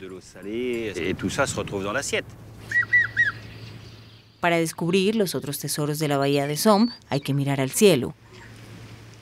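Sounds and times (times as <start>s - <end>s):
speech: 0.0s - 2.9s, 4.4s - 8.2s
harsh voice-like bird calls: 2.6s - 4.4s.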